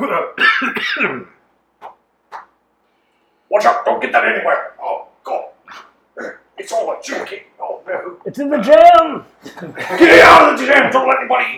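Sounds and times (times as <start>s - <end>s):
person acting out a loud hacking cough: 0.0s - 2.4s, 5.3s - 6.5s
speech: 0.1s - 1.4s, 3.5s - 11.5s.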